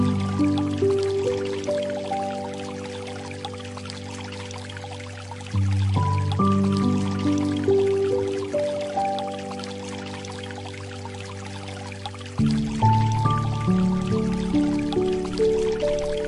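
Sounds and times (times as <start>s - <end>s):
flowing water: 0.0s - 16.2s
gentle light music: 0.0s - 16.2s.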